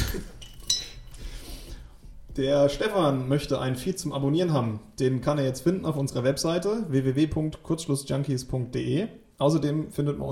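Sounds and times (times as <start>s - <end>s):
beer glasses clinking in a toast: 0.0s - 1.2s
glass rattling and handling noise: 0.0s - 1.2s
speech: 2.4s - 10.2s.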